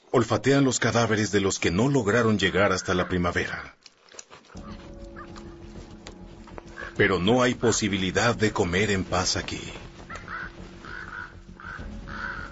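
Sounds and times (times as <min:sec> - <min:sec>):
speech: 0:00.1 - 0:03.8, 0:07.0 - 0:09.8
ravens cawing: 0:02.6 - 0:03.5, 0:04.6 - 0:08.8, 0:09.4 - 0:12.5
coyotes whimpering and yipping over carcasses of park animals: 0:04.5 - 0:07.1, 0:09.8 - 0:12.5.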